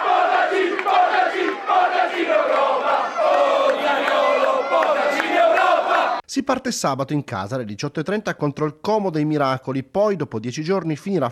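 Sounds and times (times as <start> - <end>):
large stadium crowd of football fans chanting in unison: 0.0 - 6.2
speech: 6.3 - 11.3.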